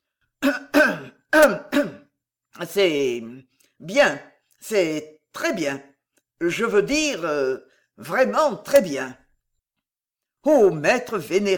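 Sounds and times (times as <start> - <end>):
speech: 0.4 - 1.8, 2.6 - 9.2, 10.4 - 11.5
man clearing his throat: 0.4 - 2.2.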